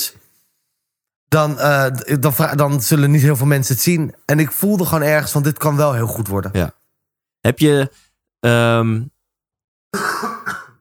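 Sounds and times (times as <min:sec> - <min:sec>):
speech: 0:01.3 - 0:06.8, 0:07.4 - 0:09.1, 0:09.9 - 0:10.2
loud cough or sneeze: 0:10.0 - 0:10.8.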